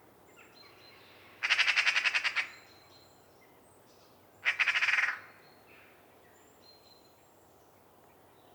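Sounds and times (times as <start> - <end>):
Eurasian magpie Pica pica rattle call: 1.4 - 2.5, 4.4 - 5.2.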